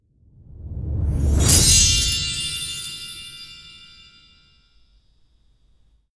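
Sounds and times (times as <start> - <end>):
magic spell coins: 1.2 - 4.4.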